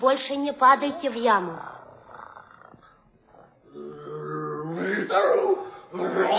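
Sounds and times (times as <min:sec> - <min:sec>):
speech: 0:00.0 - 0:01.7, 0:04.8 - 0:06.3
tigress roaring: 0:01.3 - 0:05.0.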